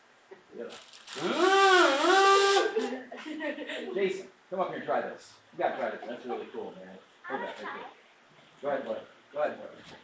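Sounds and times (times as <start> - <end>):
speech: 0.6 - 1.6, 3.2 - 8.0, 8.6 - 10.0
buzzy kazoo-like hum through a membrane: 1.0 - 3.0.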